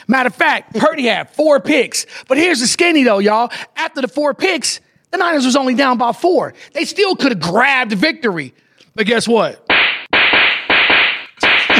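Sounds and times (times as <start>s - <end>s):
speech: 0.1s - 9.6s
loud sharp slap sound effects: 9.7s - 11.7s.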